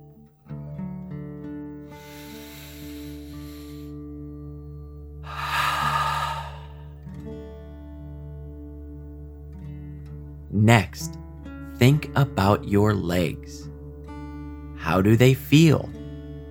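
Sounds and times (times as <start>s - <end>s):
slow deep breathing in and out: 1.9s - 4.1s, 5.2s - 7.1s
speech: 10.6s - 11.2s, 11.8s - 13.7s, 14.9s - 16.0s.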